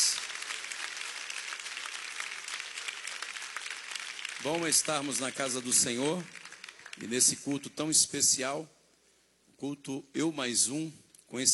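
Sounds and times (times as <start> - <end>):
audience clapping hands: 0.0 - 7.8
speech: 4.4 - 6.4, 7.0 - 8.8, 9.6 - 11.5.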